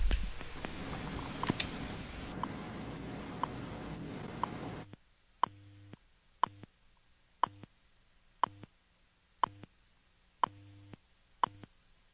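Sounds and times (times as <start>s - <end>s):
dense hissy telephone line noise: 0.0s - 5.0s
time-check ticks over a telephone line: 5.4s - 6.7s, 7.4s - 7.7s, 8.4s - 8.7s, 9.4s - 9.7s, 10.4s - 11.7s.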